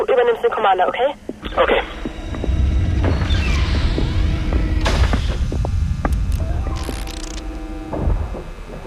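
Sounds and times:
speech: 0:00.0 - 0:02.1
soft whirring hum of a dust-removal cabin: 0:00.0 - 0:08.8
thin rising and falling tones: 0:01.4 - 0:08.8
faint clicks and crackles: 0:06.0 - 0:07.6.

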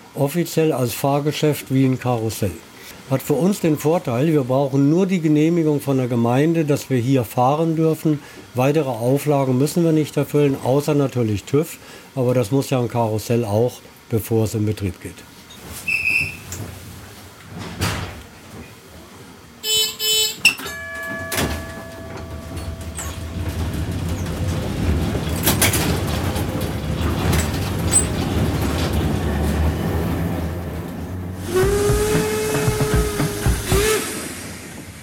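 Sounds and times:
speech: 0:00.2 - 0:15.3
brief squeal: 0:15.5 - 0:16.6
vintage tram rumbling along its rails: 0:16.4 - 0:35.0
bell or whistle-like chime: 0:20.5 - 0:23.6.

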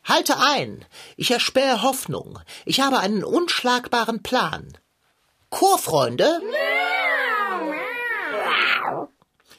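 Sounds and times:
speech: 0:00.1 - 0:04.8, 0:05.5 - 0:07.7, 0:08.6 - 0:09.2
several cats meowing and yowling: 0:06.4 - 0:09.1.

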